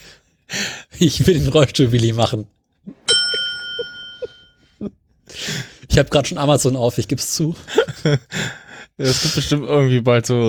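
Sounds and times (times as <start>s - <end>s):
speech: 1.0s - 2.6s, 6.0s - 10.4s
bicycle bell strike: 3.1s - 4.6s.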